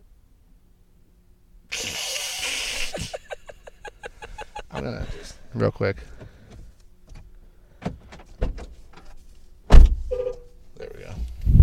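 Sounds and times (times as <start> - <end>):
laughter: 1.8 - 5.5
speech: 4.8 - 6.2
mechanical clicks and thunks from a truck: 6.1 - 10.5.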